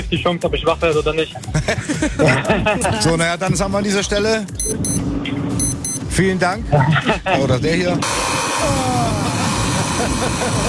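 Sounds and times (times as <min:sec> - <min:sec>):
speech: 0:00.1 - 0:05.1, 0:06.2 - 0:08.9, 0:10.0 - 0:10.6
laughter: 0:01.3 - 0:03.3, 0:06.6 - 0:07.9, 0:08.6 - 0:10.6
alarm clock sounding in short electronic beeps: 0:04.6 - 0:06.1.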